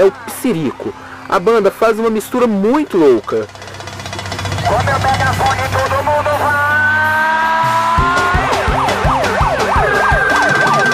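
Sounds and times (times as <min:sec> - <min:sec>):
speech: 0:00.0 - 0:03.6
steady pounding drum beat: 0:02.9 - 0:10.9
siren wailing at an axé band's show: 0:04.4 - 0:10.9.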